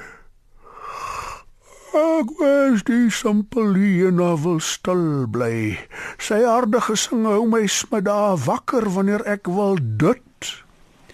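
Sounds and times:
voice imitating a leopard's yawn: 0.0s - 2.1s
speech: 2.0s - 10.6s.

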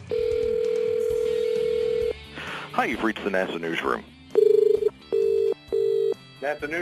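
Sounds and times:
telephone ringing tone of an outgoing call: 0.0s - 2.2s, 4.4s - 6.2s
speech: 2.8s - 4.1s, 6.4s - 6.8s.

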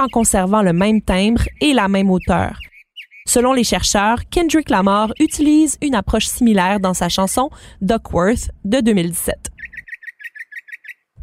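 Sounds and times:
speech: 0.0s - 2.7s, 3.3s - 9.6s
mockingbird singing repeated chirped notes: 0.0s - 7.0s, 9.4s - 11.2s.

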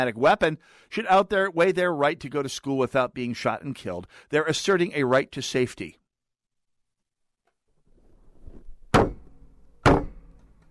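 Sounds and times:
speech: 0.0s - 6.0s
person's head banging on a table: 8.9s - 10.3s.

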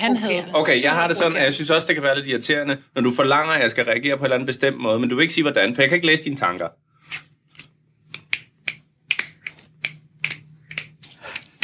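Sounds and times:
speech: 0.0s - 7.3s
finger snapping: 8.1s - 11.6s.

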